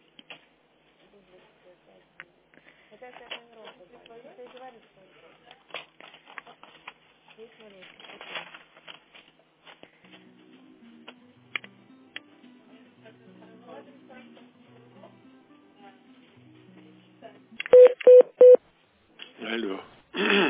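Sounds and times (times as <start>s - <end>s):
speech: 3.0s - 6.0s, 7.4s - 8.7s
touch-tone telephone dialing beeps: 17.7s - 18.6s.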